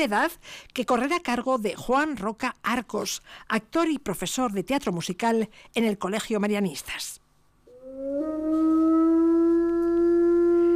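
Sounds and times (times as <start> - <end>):
speech: 0.0 - 7.2, 8.0 - 9.0
single wolf howling: 7.7 - 10.7.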